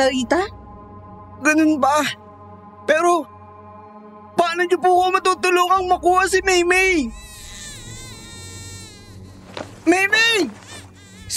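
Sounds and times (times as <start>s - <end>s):
speech: 0.0s - 0.6s, 1.4s - 2.2s, 2.9s - 3.3s, 4.4s - 7.2s, 9.8s - 10.6s
child crying: 7.1s - 11.3s.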